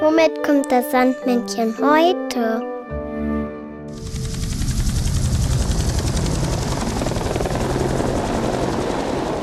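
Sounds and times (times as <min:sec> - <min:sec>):
speech: 0:00.2 - 0:02.7
helicopter flying with rotor chopping and engine roar: 0:03.9 - 0:09.4.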